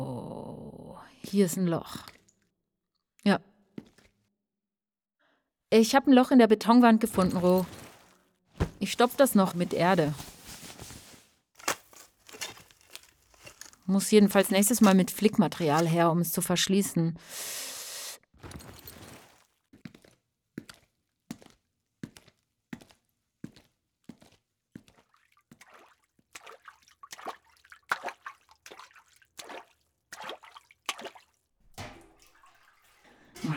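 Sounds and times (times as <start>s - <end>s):
speech: 1.3s - 2.1s, 3.3s - 3.5s, 5.7s - 7.8s, 8.9s - 10.3s, 13.9s - 17.6s
water dripping into a container: 24.9s - 33.5s.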